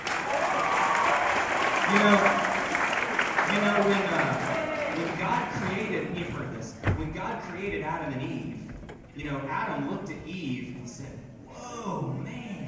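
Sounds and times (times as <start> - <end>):
crowd applauding to welcome the women present: 0.0 - 6.6
cheers and voices: 0.2 - 2.7, 3.5 - 5.8
speech: 1.9 - 2.4, 3.6 - 8.6, 9.2 - 12.0.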